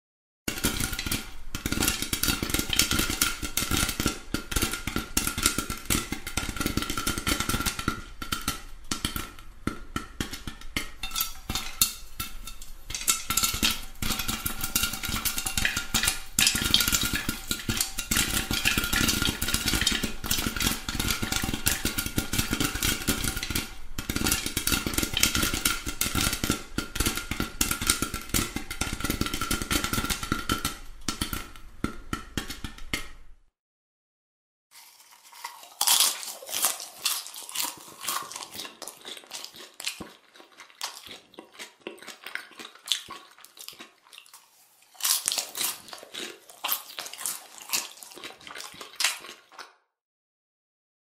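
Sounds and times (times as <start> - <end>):
popcorn popping: 0.5 - 33.5, 34.8 - 43.8, 45.0 - 49.5
popcorn being chewed: 10.0 - 30.3, 34.8 - 49.8.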